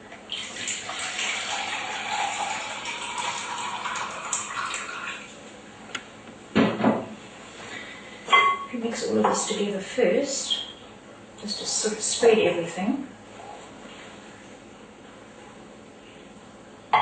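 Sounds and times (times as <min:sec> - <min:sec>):
warm water pouring into a bowl of bread mix: 0:00.3 - 0:05.3
speech: 0:08.8 - 0:10.6, 0:11.4 - 0:13.1.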